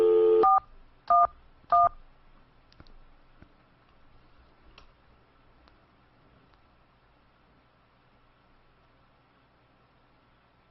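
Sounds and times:
telephone dial tone: 0.0s - 0.6s.

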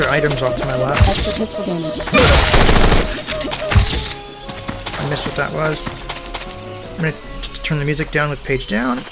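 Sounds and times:
speech: 0.1s - 4.1s, 5.0s - 6.0s, 7.0s - 9.0s
machine-gun fire in a video game: 2.1s - 3.2s.

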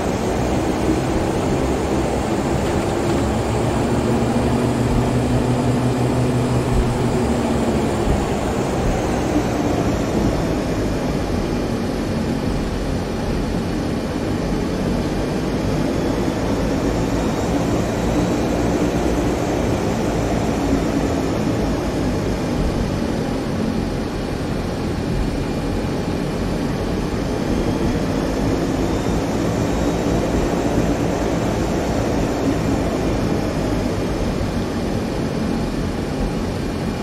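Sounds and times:
flight simulator game aircraft engine throttle noise while taxiing: 0.0s - 37.0s.

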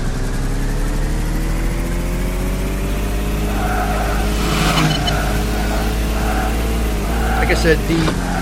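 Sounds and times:
video game car engine revving: 0.0s - 8.4s
short electronic scoring beeps in a video game: 4.3s - 5.4s
speech: 7.6s - 8.3s.

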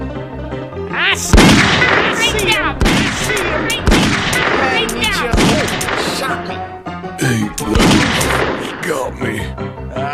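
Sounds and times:
dense busy bed of video game sounds: 0.6s - 10.1s
speech: 1.1s - 10.1s
gunshots in a video game: 1.2s - 6.4s, 7.6s - 8.8s.

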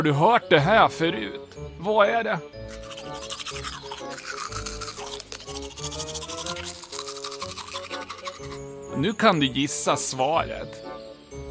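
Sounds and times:
speech: 0.0s - 4.8s, 8.4s - 11.0s
child brushing teeth with a toothbrush: 2.6s - 8.7s.

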